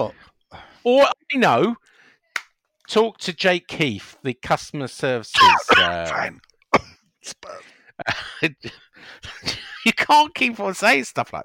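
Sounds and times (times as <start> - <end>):
speech: 0.0 - 0.2, 0.8 - 1.8, 2.9 - 6.5, 7.2 - 11.4
throat clearing: 5.4 - 6.2
person coughing: 5.4 - 7.6.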